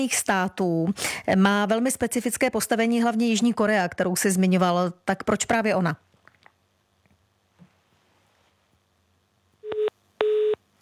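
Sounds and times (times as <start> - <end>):
speech: 0.0 - 6.1
telephone busy signal beeps on a failed call: 9.6 - 10.6.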